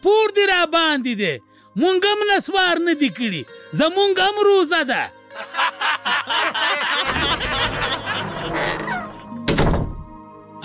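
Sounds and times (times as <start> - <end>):
speech: 0.0 - 7.8
people chuckling and laughing: 5.3 - 9.4
banging on a door: 9.4 - 10.1.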